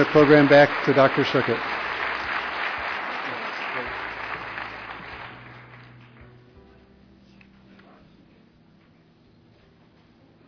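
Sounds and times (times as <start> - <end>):
speech: 0.0 - 1.8
audience applauding at an award ceremony: 0.0 - 6.3.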